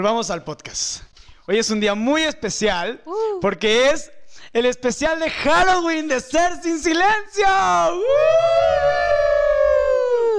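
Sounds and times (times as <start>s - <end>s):
speech: 0.0s - 9.0s
human voices howling imitating ambulance sirens: 8.1s - 10.3s.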